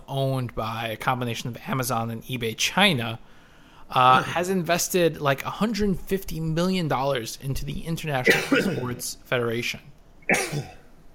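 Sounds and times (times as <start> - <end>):
low noise: 0.0 - 11.1
speech: 0.1 - 10.8
sneeze: 10.3 - 10.8.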